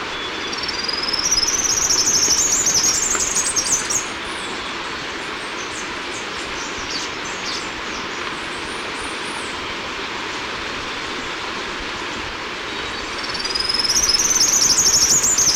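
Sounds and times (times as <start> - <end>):
constant noisy hiss: 0.0 - 15.5
Basileuterus tristriatus three-striped warbler twittering: 0.1 - 9.5, 12.7 - 15.5.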